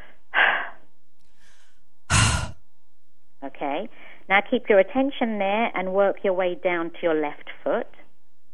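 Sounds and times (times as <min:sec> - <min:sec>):
faint breath: 0:00.0 - 0:02.6, 0:03.9 - 0:04.3
breathy puffs of exhaled air during relaxation breathing exercise: 0:01.3 - 0:02.6
speech: 0:03.6 - 0:08.0.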